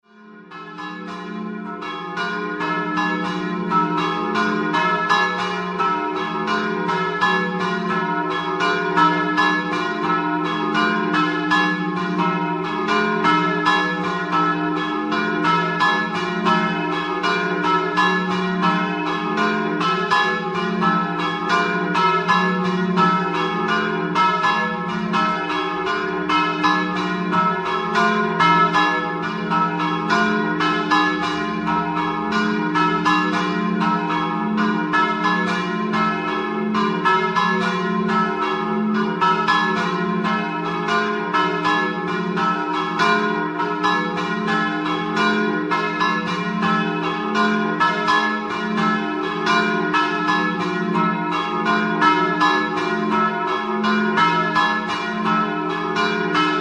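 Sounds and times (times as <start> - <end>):
bells ringing: 0.1 - 56.5.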